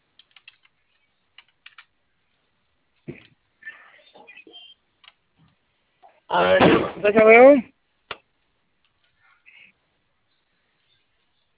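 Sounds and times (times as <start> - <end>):
computer keyboard keys clicking: 0.2 - 1.9
speech: 6.3 - 7.7.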